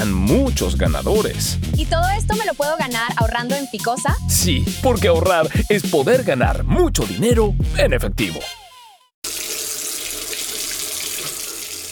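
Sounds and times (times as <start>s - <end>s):
speech: 0.0s - 8.6s
tap water gushing into a sink: 9.2s - 11.8s.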